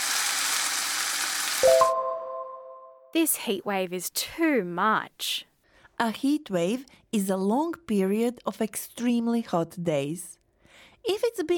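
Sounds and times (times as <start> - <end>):
food frying in a hot pan: 0.0 - 1.8
speech: 1.6 - 2.0, 3.1 - 10.4, 11.0 - 11.5.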